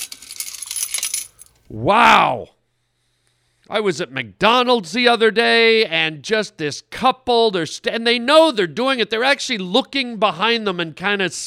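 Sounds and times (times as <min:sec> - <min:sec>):
coins of change spilling and clattering: 0:00.0 - 0:01.6
speech: 0:01.7 - 0:02.6, 0:03.7 - 0:11.4.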